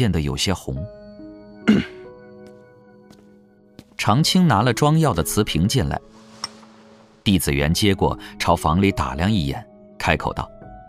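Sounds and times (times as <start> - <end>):
speech: 0.0 - 1.0, 1.7 - 2.0, 4.0 - 6.2, 7.2 - 10.5
man coughing: 1.6 - 2.1.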